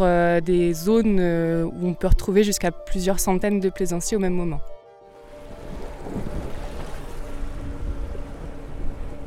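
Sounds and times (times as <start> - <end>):
speech: 0.0 - 4.7
boat engine droning with a low rumble setting out from harbour in the gulf: 4.8 - 9.2
rushing water: 5.2 - 9.2
wind buffeting the microphone: 5.6 - 9.2.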